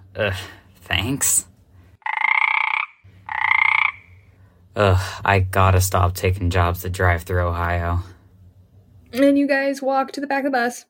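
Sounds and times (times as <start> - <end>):
speech: 0.2 - 1.5, 4.8 - 8.1, 9.1 - 10.8
frog croaking: 2.0 - 4.3.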